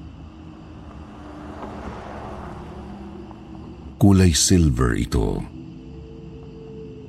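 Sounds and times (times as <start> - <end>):
car driving past: 0.0 - 4.1
speech: 4.0 - 5.6.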